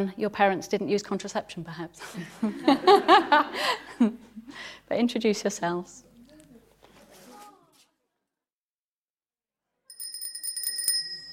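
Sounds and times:
speech: 0.0s - 6.1s
laughter: 2.0s - 4.5s
bicycle bell ringing: 9.9s - 11.3s.

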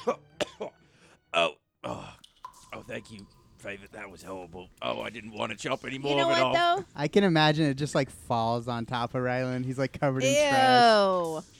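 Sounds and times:
person coughing in a rough hacking fit to clear lungs: 0.0s - 0.8s
speech: 2.9s - 11.5s.

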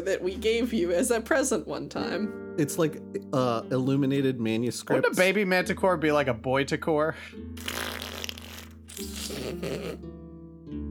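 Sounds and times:
speech: 0.0s - 7.8s
voice imitating flatulence with buzzing lips: 7.6s - 10.0s.

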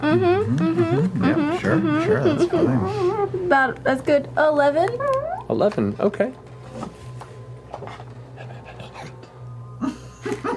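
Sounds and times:
speech: 0.0s - 6.9s
steady low electrical hum: 0.0s - 10.5s
dog panting: 8.4s - 9.3s.

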